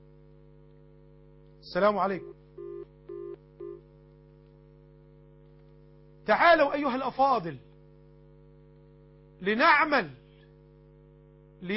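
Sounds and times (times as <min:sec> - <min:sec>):
low constant hum on the telephone line: 0:00.0 - 0:11.7
speech: 0:01.7 - 0:02.4, 0:06.3 - 0:07.7, 0:09.4 - 0:10.2, 0:11.6 - 0:11.7
telephone call connecting with short steady beeps: 0:02.2 - 0:03.8.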